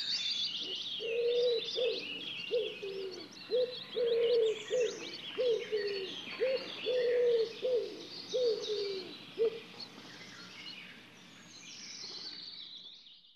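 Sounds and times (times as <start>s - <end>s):
small birds singing: 0.0s - 13.3s
Common wood pigeon giving soft low coos: 1.0s - 9.6s.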